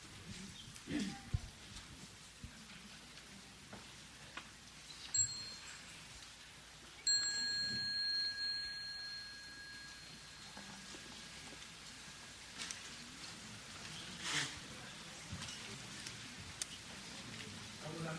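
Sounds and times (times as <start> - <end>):
low crackling hiss: 0.0 - 18.1
small mindfulness bell being struck: 5.1 - 6.2, 7.0 - 11.4.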